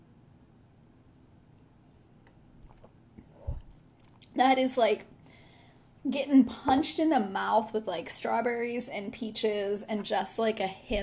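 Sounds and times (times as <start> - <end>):
person sipping sweet fruity wine: 2.6 - 4.2
speech: 4.4 - 5.1, 6.0 - 11.0.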